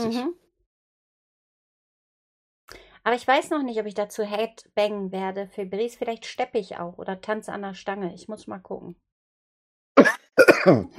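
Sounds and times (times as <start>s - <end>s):
speech: 0.0s - 0.4s, 2.7s - 9.1s, 10.0s - 10.9s
person clearing throat: 10.0s - 10.9s
person coughing: 10.0s - 10.9s.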